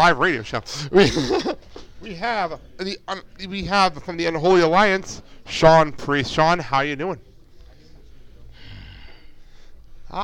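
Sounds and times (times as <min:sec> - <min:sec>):
speech: 0:00.0 - 0:07.3
laughter: 0:00.7 - 0:01.9
man breathing heavily into a microphone: 0:08.3 - 0:10.1.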